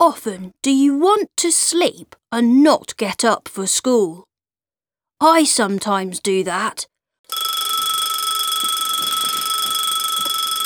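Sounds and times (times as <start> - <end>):
speech: 0.0 - 4.3, 5.2 - 7.6
alarm clock ringing with a metallic trill: 7.3 - 10.6.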